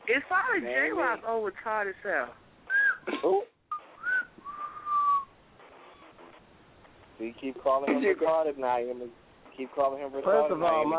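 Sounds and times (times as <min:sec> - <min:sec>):
speech: 0:00.1 - 0:02.4, 0:03.2 - 0:03.5, 0:07.2 - 0:10.9
person whistling a short tune: 0:02.7 - 0:03.1, 0:03.7 - 0:05.3.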